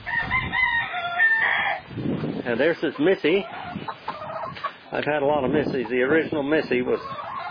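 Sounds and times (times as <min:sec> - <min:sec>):
chickens clucking as a storm approaches: 0:00.2 - 0:07.4
speech: 0:02.5 - 0:04.0, 0:04.9 - 0:07.2.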